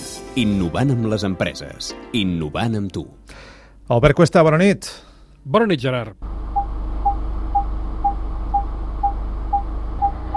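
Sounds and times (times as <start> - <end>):
speech: 0.4 - 6.3
low rumbling hum: 6.2 - 10.3
car parking sensor short electronic beeps: 6.5 - 10.3.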